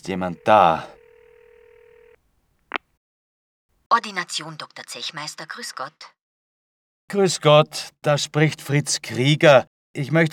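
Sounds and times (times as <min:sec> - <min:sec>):
speech: 0:00.0 - 0:01.0, 0:03.9 - 0:06.2, 0:07.1 - 0:10.3
telephone dial tone for a call to a doctor's practice: 0:00.0 - 0:02.8.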